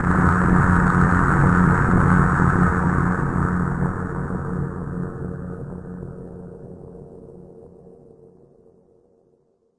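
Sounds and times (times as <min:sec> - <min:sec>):
synth static buzz hit: 0:00.0 - 0:05.8.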